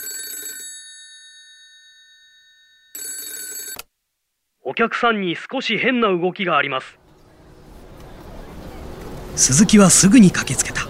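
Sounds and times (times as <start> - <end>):
old-style telephone bell ringing: 0.0 - 3.8
speech: 4.7 - 7.0, 9.4 - 10.8.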